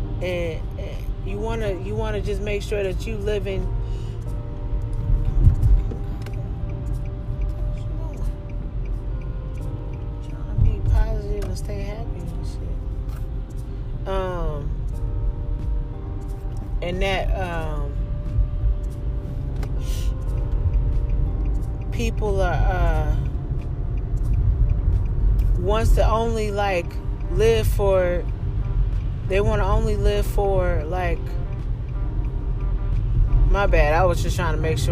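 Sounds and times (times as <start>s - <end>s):
cars passing: 0.0s - 34.9s
road traffic rumble: 0.0s - 34.9s
speech: 0.2s - 4.0s, 14.1s - 14.4s, 16.8s - 17.9s, 22.0s - 23.2s, 25.6s - 28.3s, 29.3s - 31.4s, 33.5s - 34.9s.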